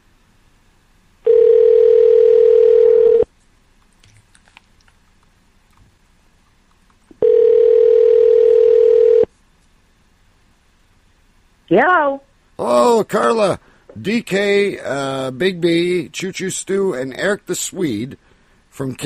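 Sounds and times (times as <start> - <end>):
telephone dial tone while a call is being placed: 1.3 - 3.3, 7.2 - 9.3
speech: 11.7 - 19.0.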